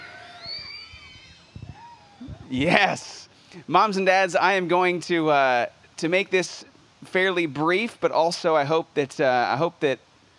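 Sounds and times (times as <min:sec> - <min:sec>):
crowd of children in an audience screaming: 0:00.0 - 0:02.8
speech: 0:02.5 - 0:10.1.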